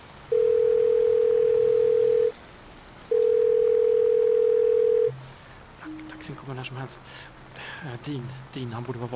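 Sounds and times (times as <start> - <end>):
telephone ringback tone from an outgoing call: 0.3 - 2.3, 3.1 - 5.2
speech: 6.6 - 9.1.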